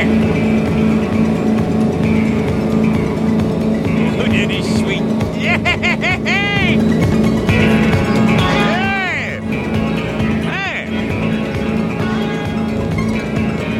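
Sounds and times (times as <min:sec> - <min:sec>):
churning water: 0:00.0 - 0:13.7
motorboat engine roaring at full throttle: 0:00.0 - 0:13.7
laughter: 0:04.0 - 0:07.0.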